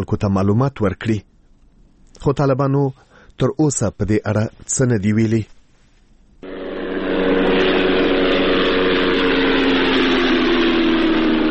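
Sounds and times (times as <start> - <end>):
speech: 0.0 - 1.3, 2.2 - 5.6
unmanned drone engine buzzing overhead in Ghazni province, Afghanistan: 6.4 - 11.4.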